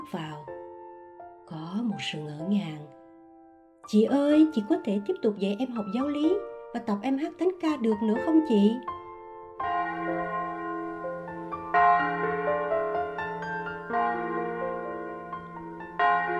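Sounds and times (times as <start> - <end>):
speech: 0.1 - 0.5, 1.5 - 3.0, 3.9 - 9.0
church bells ringing in peals: 9.6 - 16.3.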